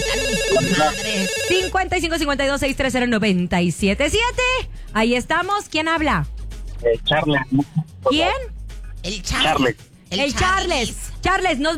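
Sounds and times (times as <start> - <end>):
telephone ringing with an incoming call: 0.0 - 1.8
speech: 0.5 - 11.7.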